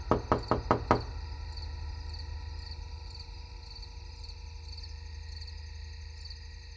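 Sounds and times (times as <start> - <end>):
knocking on an apartment door: 0.0 - 1.2
faint hum: 0.0 - 6.7.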